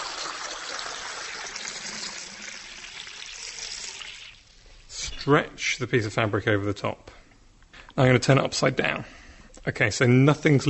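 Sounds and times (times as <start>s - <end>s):
water pouring into a glass: 0.0s - 4.9s
speech: 5.2s - 7.1s, 8.0s - 10.6s.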